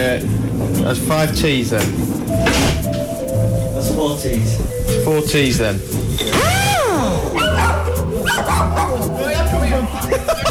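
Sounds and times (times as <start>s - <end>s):
speech: 0.0s - 3.0s, 3.8s - 6.0s
dog barking and yelping: 6.7s - 9.2s
laughter: 7.3s - 10.4s.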